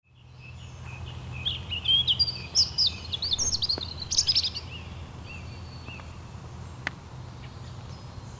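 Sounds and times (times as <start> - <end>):
low background hum: 0.1 - 8.3
European robin twittering: 0.4 - 6.7.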